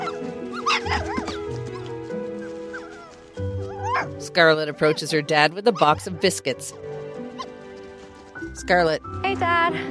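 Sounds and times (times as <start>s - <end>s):
puppies barking and yipping in a yard: 0.0s - 4.2s, 5.7s - 7.9s
speech: 4.3s - 6.9s, 8.6s - 9.8s.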